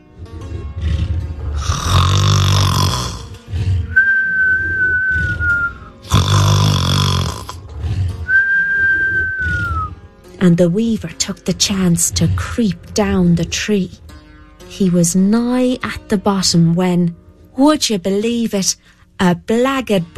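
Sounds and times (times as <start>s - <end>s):
voice imitating loud snoring of a sleeping dragon: 0.0s - 10.1s
speech: 10.4s - 14.0s, 14.7s - 20.1s.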